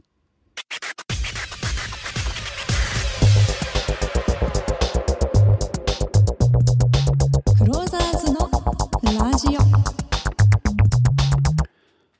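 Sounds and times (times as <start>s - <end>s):
record scratch: 0.6s - 11.4s
hip-hop jingle with punchy steady beat and bouncing bassline: 0.6s - 11.7s
person calling out a tagline: 7.6s - 10.0s.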